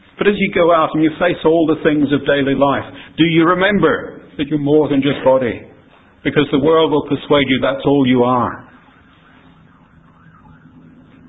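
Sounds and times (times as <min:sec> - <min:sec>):
city noise: 0:00.0 - 0:11.2
speech: 0:00.2 - 0:08.7
emergency siren wailing outdoors: 0:07.5 - 0:11.2.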